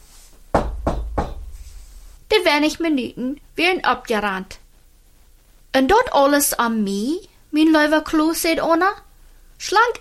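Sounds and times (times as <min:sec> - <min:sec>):
teacher knocking on a door: 0:00.5 - 0:01.7
speech: 0:02.3 - 0:04.6, 0:05.8 - 0:09.0, 0:09.6 - 0:09.9.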